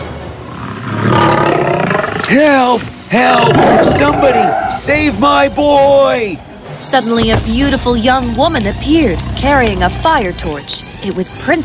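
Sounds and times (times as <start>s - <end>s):
lion roaring with a guttural growl: 0.3s - 4.7s
speech: 2.3s - 11.6s.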